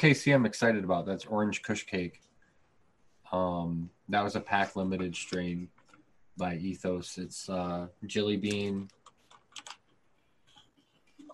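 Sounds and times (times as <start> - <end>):
speech: 0.0 - 2.3, 3.3 - 5.8, 6.4 - 9.0
typing on a computer keyboard: 8.5 - 9.9.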